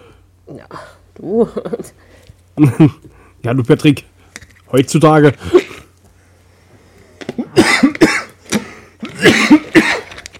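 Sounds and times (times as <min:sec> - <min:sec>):
speech: 0:00.5 - 0:04.1, 0:04.7 - 0:05.6
harsh hacking coughing: 0:07.4 - 0:10.2.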